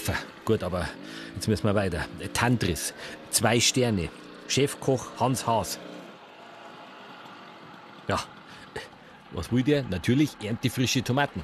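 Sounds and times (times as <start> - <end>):
car engine and road noise moving through traffic: 0.0 - 11.4
speech: 0.1 - 6.0, 8.1 - 11.4.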